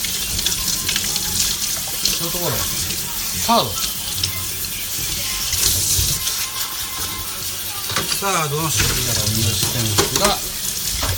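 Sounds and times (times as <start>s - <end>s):
running tap water splashing into a sink: 0.0s - 11.1s
speech: 2.2s - 2.8s, 3.5s - 3.9s, 8.2s - 10.6s
clinks and rustles of dishes being washed: 6.9s - 11.1s.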